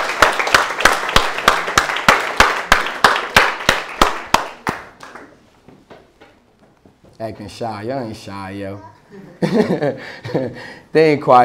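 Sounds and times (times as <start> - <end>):
sharp claps: 0.0 - 5.4
speech: 7.2 - 11.4
laughter: 9.1 - 10.6.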